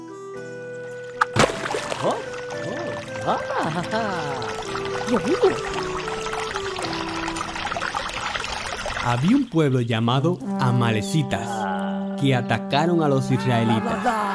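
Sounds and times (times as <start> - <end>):
rod striking a hill near Horeb: 1.2 - 2.1
water gushing from a rock: 1.2 - 9.8
speech: 2.0 - 2.4, 3.2 - 6.0, 9.0 - 11.6, 12.2 - 14.2.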